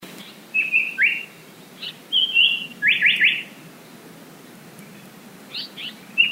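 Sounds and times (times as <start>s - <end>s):
Japanese paradise flycatcher song of short high whistled phrases: 0.5s - 3.5s, 5.6s - 6.3s.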